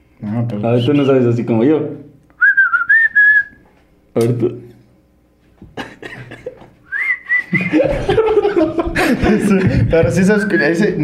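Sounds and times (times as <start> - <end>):
speech: 0.3 - 2.1, 4.2 - 4.6, 7.5 - 11.0
person whistling a short wavering tune: 2.4 - 3.6, 6.9 - 7.7
laughter: 5.6 - 6.7, 7.4 - 10.4.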